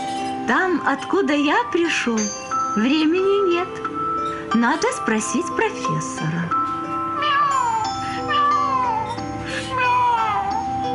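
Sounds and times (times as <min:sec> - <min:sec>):
speech: 0:00.5 - 0:03.8, 0:04.5 - 0:06.6
cat meowing: 0:07.2 - 0:10.8.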